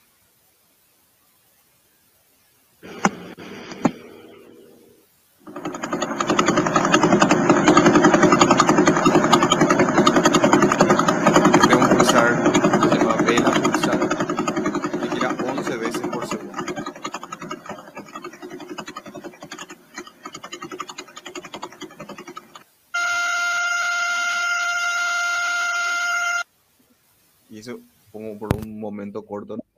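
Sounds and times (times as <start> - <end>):
steady buzzing drone of a pulsar rendered as sound: 2.8 - 26.4.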